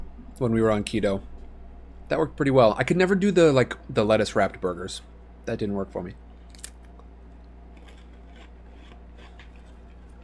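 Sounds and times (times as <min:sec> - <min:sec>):
steady low hum: 0:00.0 - 0:10.2
speech: 0:00.4 - 0:01.3, 0:02.1 - 0:06.2
chewing with crisp crunches: 0:06.4 - 0:10.2.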